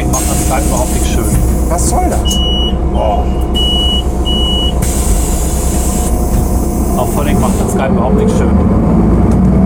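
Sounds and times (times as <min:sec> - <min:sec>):
bus engine drone heard from inside the cabin: 0:00.0 - 0:09.6
speech: 0:01.7 - 0:03.6, 0:07.0 - 0:09.5
short electronic beeps: 0:02.2 - 0:04.9.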